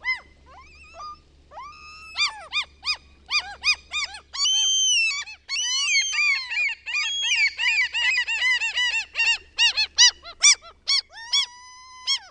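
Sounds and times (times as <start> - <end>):
common gull calling with mewing cries and yelps: 0.0 - 12.2.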